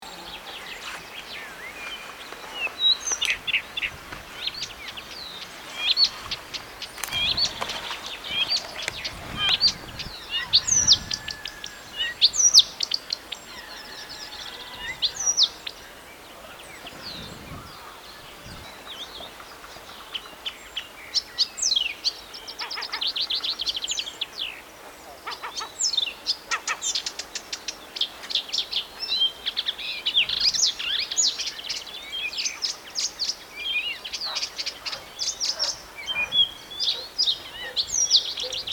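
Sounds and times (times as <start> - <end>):
Blyth's reed warbler singing: 0.0 - 38.7.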